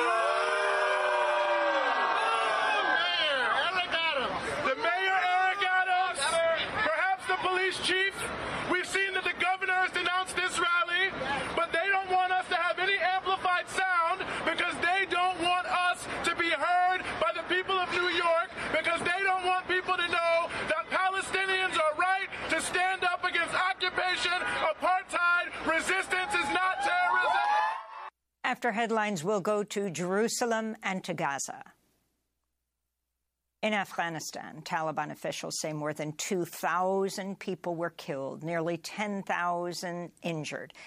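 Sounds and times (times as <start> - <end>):
yells at an outdoor rally: 0.0 - 7.8, 8.8 - 28.1
large crowd chanting and shouting at a Gaza solidarity protest rally: 0.0 - 28.1
speech: 28.6 - 31.8, 33.6 - 40.8.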